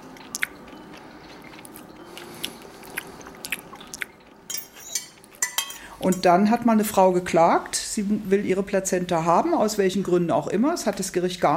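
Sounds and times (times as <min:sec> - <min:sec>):
person biting and chewing a slightly bloody piece of food: 0:00.1 - 0:04.4
speech: 0:06.0 - 0:11.5.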